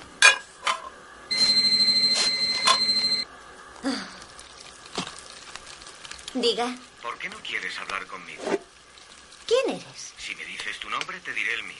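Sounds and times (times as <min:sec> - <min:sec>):
telephone ringing: 0:01.3 - 0:03.3
speech: 0:06.4 - 0:08.6, 0:09.5 - 0:11.7.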